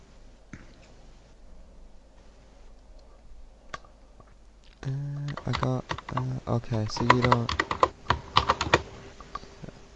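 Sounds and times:
speech: 0:04.8 - 0:07.6
typing on a computer keyboard: 0:05.1 - 0:09.4.

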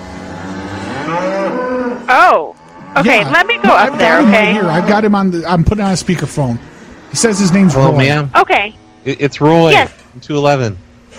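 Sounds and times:
cow mooing: 0:00.0 - 0:05.3, 0:06.6 - 0:09.2
speech: 0:02.1 - 0:10.8.

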